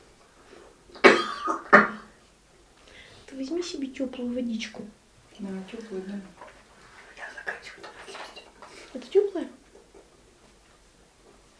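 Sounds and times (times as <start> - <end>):
short sharp coughs: 1.0 - 2.2
speech: 3.6 - 6.5.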